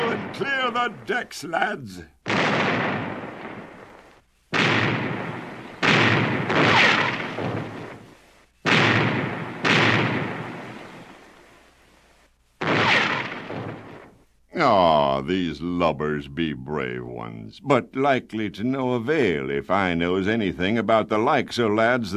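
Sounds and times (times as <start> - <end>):
ship's cannons firing a broadside: 0.0 - 11.6, 12.6 - 14.2
speech: 0.4 - 2.8, 14.6 - 22.1.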